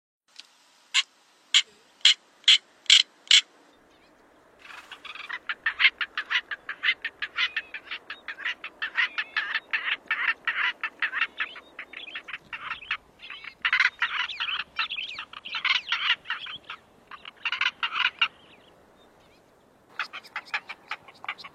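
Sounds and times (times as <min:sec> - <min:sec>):
black-winged bustard calling: 0:01.0 - 0:03.5, 0:04.6 - 0:18.6, 0:19.9 - 0:21.5.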